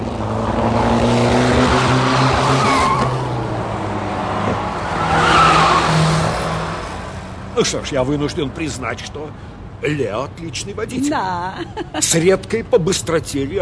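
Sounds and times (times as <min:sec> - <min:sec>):
car engine accelerating and turning sharply at a crossroads: 0:00.0 - 0:07.2
speech: 0:07.6 - 0:13.6
laughter: 0:11.0 - 0:12.4.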